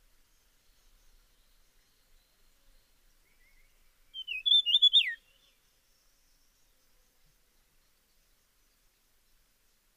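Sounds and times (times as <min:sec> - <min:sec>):
dusky fulvetta whistling slurred notes: 0:04.2 - 0:05.3.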